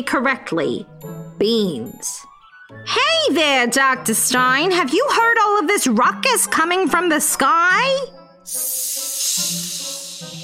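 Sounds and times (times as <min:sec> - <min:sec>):
speech: 0:00.0 - 0:10.4
loud snake-like breathy hissing: 0:08.5 - 0:10.4.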